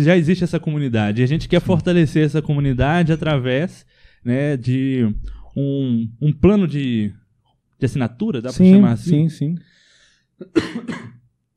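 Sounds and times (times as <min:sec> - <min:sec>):
speech: 0:00.0 - 0:07.2, 0:07.8 - 0:09.8, 0:10.4 - 0:11.1
person with a mold allergy coughing: 0:10.4 - 0:11.3.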